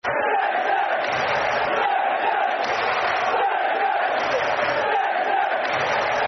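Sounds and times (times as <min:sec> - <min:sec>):
football crowd chanting: 0:00.0 - 0:06.2.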